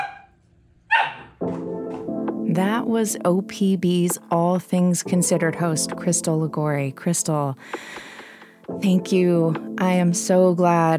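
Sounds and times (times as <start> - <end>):
dog barking: 0.0 - 1.4
speech: 2.6 - 8.1, 8.7 - 10.9.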